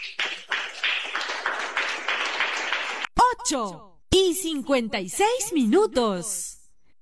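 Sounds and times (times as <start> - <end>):
crowd clapping: 0.0 - 3.1
speech: 3.4 - 6.6.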